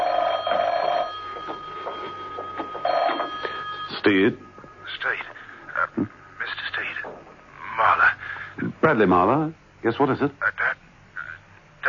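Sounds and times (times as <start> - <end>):
telephone trilling ring: 0.0 - 6.7
shuffling: 1.2 - 4.0
speech: 4.0 - 5.2, 8.8 - 10.5.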